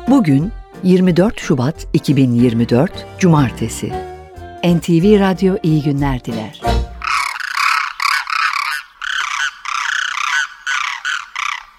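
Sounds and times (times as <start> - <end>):
speech: 0.1 - 6.8
common cranes calling: 7.0 - 11.7.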